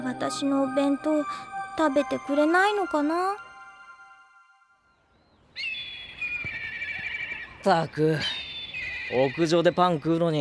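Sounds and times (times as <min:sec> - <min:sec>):
faint high tones: 0:00.0 - 0:05.2
speech: 0:00.2 - 0:03.5, 0:07.6 - 0:08.4, 0:09.1 - 0:10.4.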